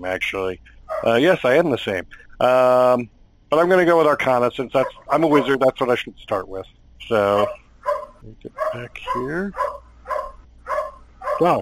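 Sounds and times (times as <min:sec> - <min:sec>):
speech: 0:00.0 - 0:07.6, 0:08.2 - 0:09.8, 0:11.4 - 0:11.6
dog barking: 0:00.9 - 0:01.2, 0:04.8 - 0:05.6, 0:07.3 - 0:11.6.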